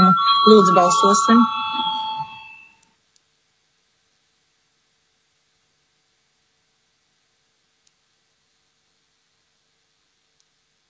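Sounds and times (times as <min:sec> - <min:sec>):
parliament voting bell electronic tone: 0:00.0 - 0:02.8
low hum of room noise: 0:00.0 - 0:10.8
speech: 0:00.4 - 0:01.6
faint ticks: 0:07.8 - 0:08.0.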